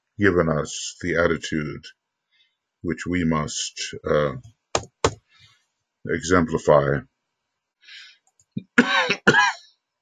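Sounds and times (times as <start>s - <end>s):
speech: 0.2s - 2.0s, 2.8s - 4.9s, 6.0s - 7.1s
person with a chronic cough coughing harshly: 8.6s - 9.6s.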